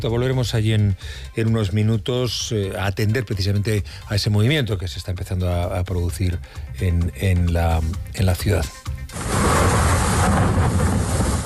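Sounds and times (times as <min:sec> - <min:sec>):
speech: 0:00.0 - 0:09.4
deep low rumble of storm and wind: 0:09.1 - 0:11.4
heavy rain pouring: 0:09.1 - 0:11.4.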